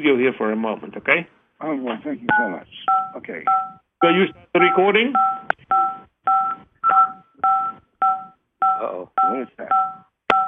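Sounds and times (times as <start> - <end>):
speech: 0.0 - 5.8, 8.8 - 9.9
telephone keypad dual tone beeps on a caller's phone: 2.3 - 10.4.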